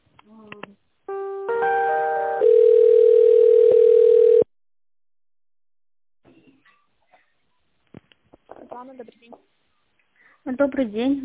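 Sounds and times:
telephone line clicks and beeps during a call transfer: 2.4s - 4.5s
speech: 10.6s - 11.2s.

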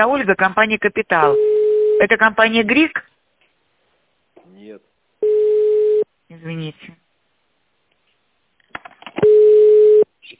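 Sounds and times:
speech: 0.0s - 3.1s, 6.3s - 7.0s
ringing tone of an outgoing telephone call: 1.3s - 2.0s, 5.2s - 6.1s, 9.2s - 10.1s.

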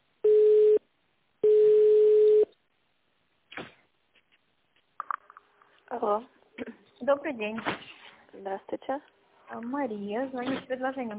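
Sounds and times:
telephone ringback beeps while a call is transferred to an internal extension: 1.4s - 2.5s
speech: 6.0s - 11.1s.

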